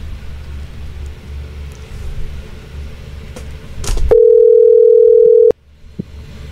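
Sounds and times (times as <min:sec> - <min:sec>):
electronic ring tone on a phone line while placing a call: 0:04.1 - 0:05.5.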